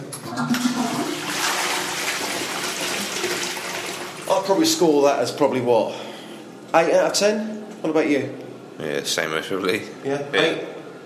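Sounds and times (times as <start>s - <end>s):
new toilet flushing: 0.2s - 5.0s
speech: 4.5s - 6.1s, 6.7s - 10.8s.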